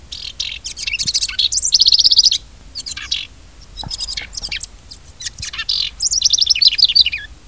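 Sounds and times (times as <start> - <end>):
wren: 0.0 - 7.4.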